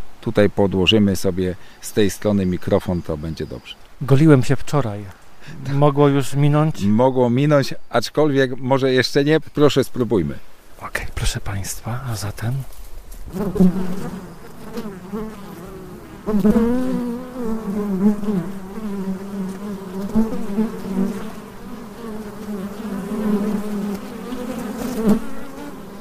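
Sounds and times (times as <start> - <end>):
speech: 0.2 - 15.5, 16.2 - 18.6
many honeybees buzzing as they work: 13.3 - 26.0.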